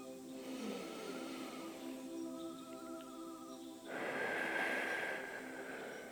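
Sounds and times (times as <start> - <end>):
steady tonal background: 0.0 - 6.1
deep breath in through the nose: 0.3 - 2.1, 3.9 - 6.1.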